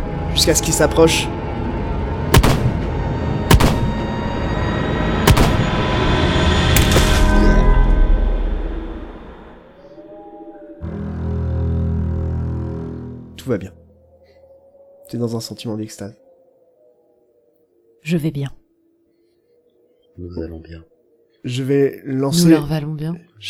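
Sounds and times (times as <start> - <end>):
steady low-pitched drone: 0.0 - 14.2
speech: 0.4 - 1.4, 13.5 - 13.8, 15.1 - 16.2, 18.0 - 18.6, 20.2 - 23.4
gunshots as a woman fires all her bullets: 2.3 - 2.9, 3.5 - 4.0, 5.3 - 5.9, 6.8 - 7.5.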